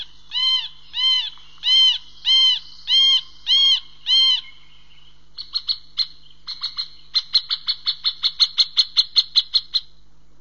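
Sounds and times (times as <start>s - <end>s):
middle spotted woodpecker contact call: 0.0s - 10.0s.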